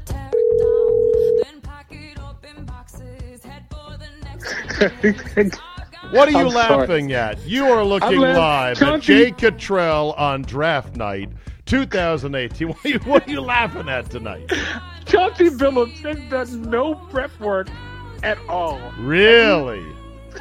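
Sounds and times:
steady telephone ringing tone: 0.3 - 1.4
laughter: 4.4 - 9.4, 12.6 - 15.0
speech: 4.8 - 20.0.

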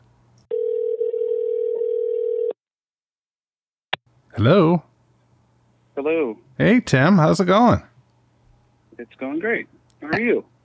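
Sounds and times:
telephone dial tone: 0.5 - 2.6
speech: 4.4 - 4.9, 6.0 - 7.9, 9.0 - 10.5.

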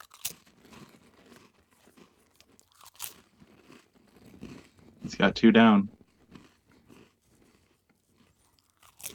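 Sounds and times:
crunching and chewing dry saltine crackers: 0.0 - 4.8, 6.3 - 9.1
speech: 5.1 - 6.0.

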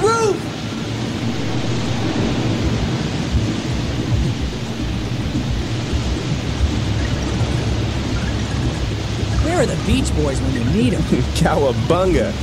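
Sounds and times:
huge rush of water pouring out of pipes: 1.1 - 12.4
speech: 9.9 - 12.4.

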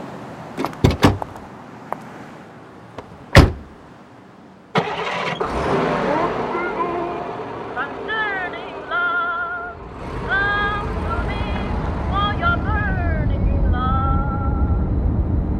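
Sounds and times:
loud thump: 0.6 - 1.3, 3.0 - 3.8
older Russian GAZ Volga car door clunks and clicks: 0.6 - 1.5, 3.0 - 3.8
older Russian GAZ Volga car engine starting and settling into rough idle: 2.6 - 15.5
people talking: 6.2 - 9.4, 10.3 - 14.6.

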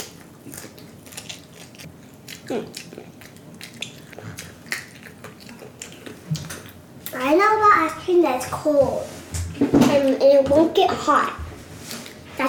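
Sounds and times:
person chewing crunchy broccoli: 0.0 - 7.2
speech: 2.5 - 3.1, 7.2 - 9.2, 9.9 - 11.4.

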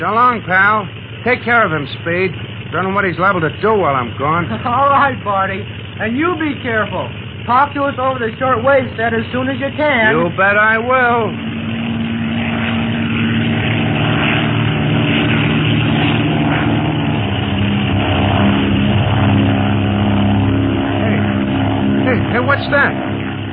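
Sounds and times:
speech: 0.0 - 11.5, 22.6 - 23.0
propeller airplane flying overhead: 0.0 - 23.5
laughter: 4.2 - 5.2.

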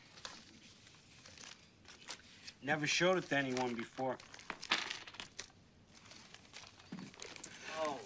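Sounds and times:
speech: 2.7 - 4.3
nickel quarter and penny coins clinking and jingling while handled: 3.1 - 8.0.

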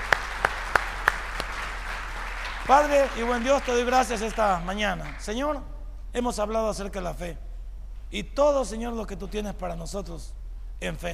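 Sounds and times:
crowd applauding: 0.0 - 5.4
sharp evenly spaced claps: 0.0 - 5.6
speech: 2.7 - 7.5, 8.1 - 11.1.

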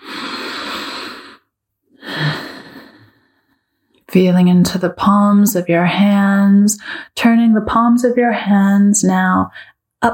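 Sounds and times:
deep breath during a guided meditation: 0.0 - 3.9
speech: 4.1 - 10.1.

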